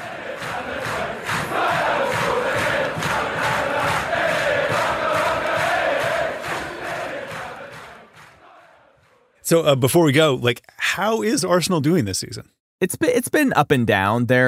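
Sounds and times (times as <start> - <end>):
large football stadium crowd singing and chanting: 0.0 - 9.4
speech: 9.5 - 14.4.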